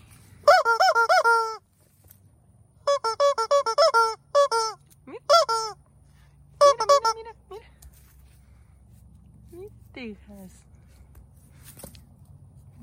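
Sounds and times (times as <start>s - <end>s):
squeaky duck toy honking: 0.4s - 1.6s, 2.8s - 5.8s, 6.6s - 7.4s
speech: 10.1s - 10.7s.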